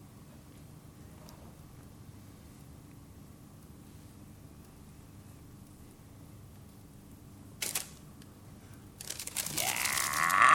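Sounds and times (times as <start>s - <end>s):
paper envelope crumpled and thrown away: 9.0s - 10.4s.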